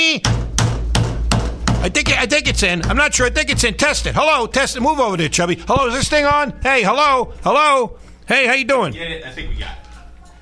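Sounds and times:
speech: 0.2s - 0.4s, 1.8s - 9.8s
hammer striking: 0.2s - 7.6s.

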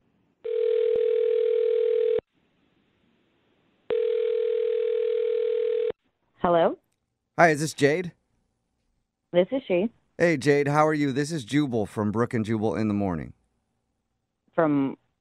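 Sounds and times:
long steady telephone ringing tones: 0.5s - 2.2s, 3.9s - 5.9s
speech: 7.4s - 8.2s, 9.3s - 13.4s, 14.6s - 15.0s.

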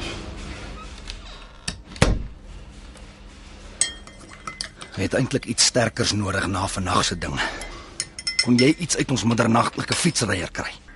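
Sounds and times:
door pushed shut with a solid thump: 2.0s - 2.4s
speech: 5.0s - 7.7s, 8.4s - 10.8s.

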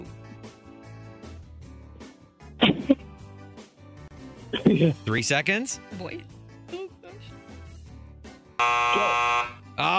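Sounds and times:
speech: 4.7s - 6.4s
game show time-up buzzer: 8.6s - 9.6s.

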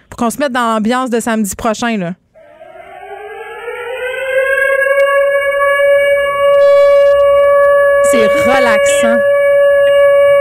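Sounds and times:
speech: 0.2s - 2.2s, 8.1s - 9.3s
war-time curfew air-raid siren wailing: 2.4s - 10.3s.

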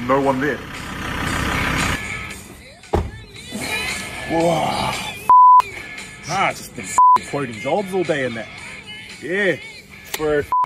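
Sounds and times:
lifted ute engine rumbling as it drives up a curb and parks: 0.0s - 3.2s
speech: 0.1s - 0.7s, 4.3s - 5.0s, 6.3s - 8.6s, 9.2s - 10.5s.

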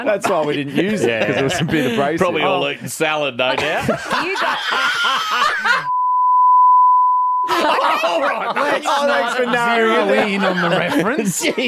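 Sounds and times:
laughter: 0.0s - 2.8s, 3.6s - 5.9s, 7.5s - 11.6s
speech: 0.0s - 5.9s, 7.5s - 11.6s
censor bleep tone: 5.9s - 7.6s.

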